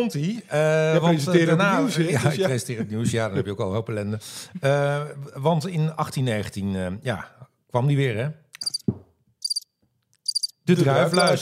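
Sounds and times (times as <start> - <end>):
speech: 0.0 - 9.0, 10.7 - 11.4
laughter: 1.4 - 4.9, 10.8 - 11.4
cricket chirping in high-pitched trills: 8.6 - 8.8, 9.4 - 11.4.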